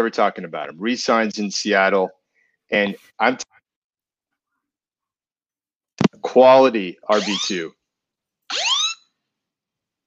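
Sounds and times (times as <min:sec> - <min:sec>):
speech: 0:00.0 - 0:03.6, 0:06.2 - 0:07.8, 0:08.5 - 0:08.7
fire alarm electronic tone sweeping upward in pitch: 0:07.1 - 0:07.6, 0:08.5 - 0:09.1.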